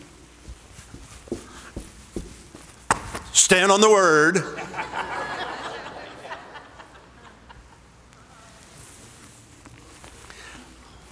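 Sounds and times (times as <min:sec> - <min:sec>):
heavy thuds of feet stomping on a floor: 0:00.9 - 0:03.3
speech: 0:03.4 - 0:04.8
laughter: 0:04.4 - 0:07.9.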